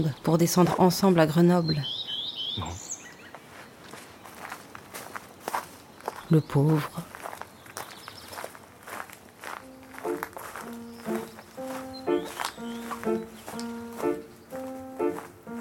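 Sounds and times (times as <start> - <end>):
speech: 0.0 - 2.0, 6.3 - 7.1
footsteps of a man walking: 3.3 - 15.5
gentle tonal musical notes: 9.6 - 15.5.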